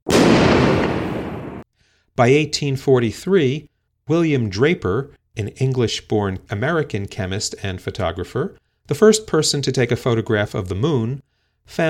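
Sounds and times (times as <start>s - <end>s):
explosion from a light-triggered photochemical chain reaction involving chlorine: 0.0s - 1.7s
speech: 2.2s - 11.8s.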